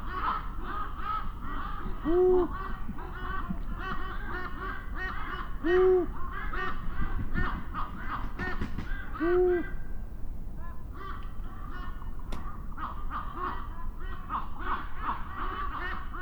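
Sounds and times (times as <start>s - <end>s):
chorus of raven calls: 0.0s - 10.0s, 10.6s - 16.2s
male Canarian long-eared owl hooting in a raven roost: 1.1s - 6.3s.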